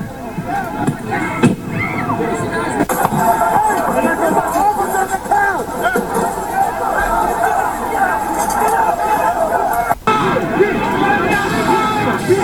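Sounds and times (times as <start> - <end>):
laughter: 0.0 - 12.4
riot crowd hubbub of many overlapping voices and shouts: 0.0 - 12.4.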